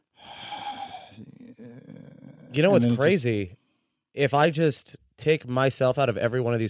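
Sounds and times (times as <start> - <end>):
rasping wheezy breath into the microphone: 0.1 - 1.2
speech: 2.5 - 3.6, 4.2 - 6.6.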